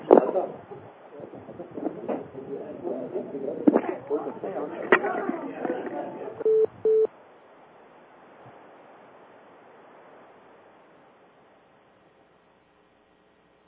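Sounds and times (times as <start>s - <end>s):
noise: 0.0s - 13.6s
short steady electronic beeps: 6.4s - 7.1s.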